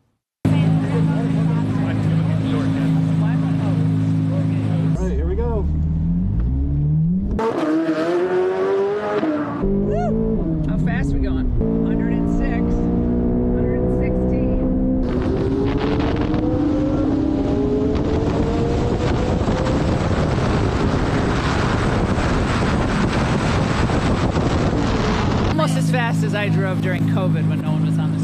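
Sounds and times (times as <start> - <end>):
Corvette sports car engine roaring through gear shifts around a race track: 0.5 - 28.2
wind buffeting: 9.6 - 27.3.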